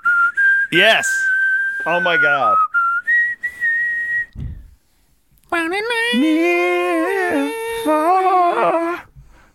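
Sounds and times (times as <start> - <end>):
person whistling a slow pop ballad melody: 0.0 - 4.8
speech: 0.7 - 2.7, 5.5 - 9.0.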